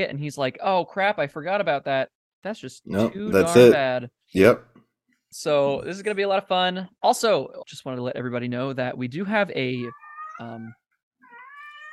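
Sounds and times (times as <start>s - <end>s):
speech: 0.0s - 4.7s, 5.3s - 10.8s
pet cat meowing: 9.8s - 11.9s.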